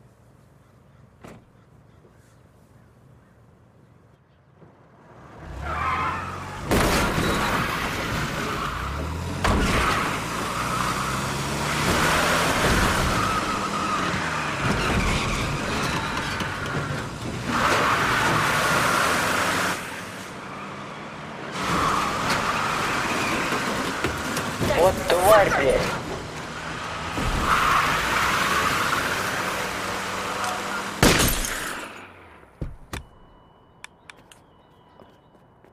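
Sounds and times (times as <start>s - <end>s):
car engine roaring and accelerating hard through gear changes: 5.0s - 31.0s.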